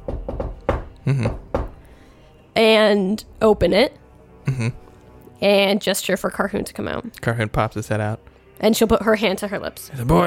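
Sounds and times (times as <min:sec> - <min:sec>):
hollow knocks on a wooden lid: 0:00.0 - 0:01.8
speech: 0:01.0 - 0:01.4, 0:02.6 - 0:04.8, 0:05.4 - 0:10.2.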